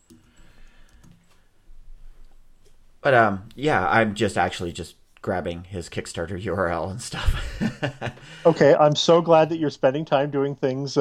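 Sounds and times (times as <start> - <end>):
computer mouse clicking: 0.0 - 1.4
speech: 3.0 - 10.9
laughter: 7.1 - 8.6.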